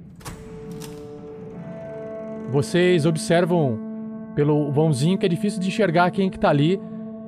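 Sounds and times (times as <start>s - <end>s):
metallic clicks and rattles from a door latch or key outside: 0.0s - 2.5s
lingering tonal hum: 0.2s - 7.2s
speech: 2.5s - 6.9s.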